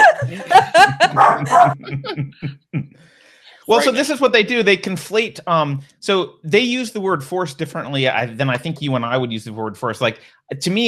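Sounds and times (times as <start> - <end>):
laughter: 0.0 - 2.6, 3.7 - 5.7
speech: 1.0 - 2.9, 3.7 - 10.8
dog barking sharp yips: 1.1 - 1.8.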